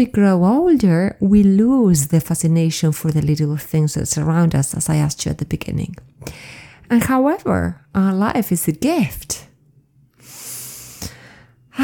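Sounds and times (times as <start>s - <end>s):
speech: 0.0s - 9.5s
person breathing in deeply: 10.2s - 11.8s.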